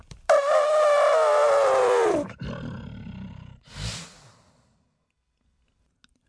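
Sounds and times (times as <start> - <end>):
elephant trumpeting: 0.3 - 2.3.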